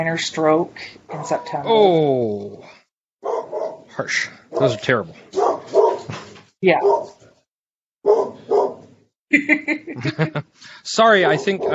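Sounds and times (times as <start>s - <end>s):
speech: 0.0s - 2.8s, 4.0s - 5.3s, 6.6s - 7.2s, 9.3s - 11.7s
dog barking: 3.2s - 3.9s, 4.5s - 7.2s, 8.0s - 8.9s, 11.1s - 11.7s
laughter: 9.3s - 10.6s.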